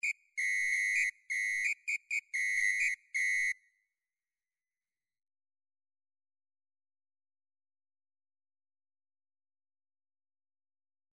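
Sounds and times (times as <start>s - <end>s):
MIDI drum whistle: 0.0s - 3.6s.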